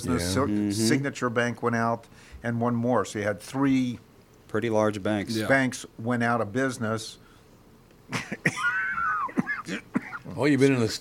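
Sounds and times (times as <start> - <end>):
speech: 0.0 - 7.2, 8.1 - 8.7, 9.7 - 10.9
short rough coughs: 8.1 - 10.4.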